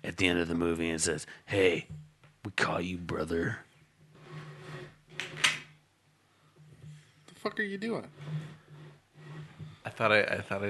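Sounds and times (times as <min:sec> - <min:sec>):
speech: 0:00.2 - 0:03.7, 0:07.4 - 0:08.6, 0:09.9 - 0:10.6
drawer sliding scrapes: 0:04.1 - 0:05.6, 0:07.9 - 0:10.0.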